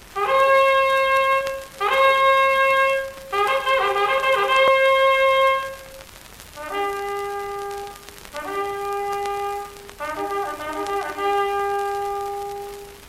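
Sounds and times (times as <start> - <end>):
trumpet playing a bright fanfare signal call: 0.2 - 6.0, 6.6 - 13.0.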